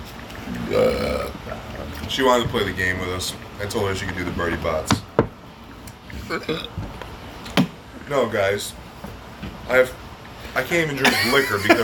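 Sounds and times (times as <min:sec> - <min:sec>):
loud drawn-out raspy burp: 0:00.5 - 0:01.6, 0:06.2 - 0:06.8
speech: 0:00.7 - 0:01.2, 0:02.1 - 0:05.1, 0:06.3 - 0:06.8, 0:08.1 - 0:08.8, 0:09.4 - 0:10.0, 0:10.6 - 0:11.8
laughter: 0:11.0 - 0:11.8.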